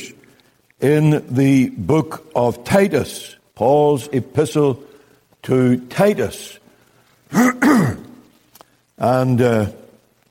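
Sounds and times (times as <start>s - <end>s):
speech: 0.8s - 6.6s, 7.3s - 8.0s, 9.0s - 9.8s
strained throat-clearing cough: 7.3s - 8.1s
person clearing throat: 7.3s - 8.2s.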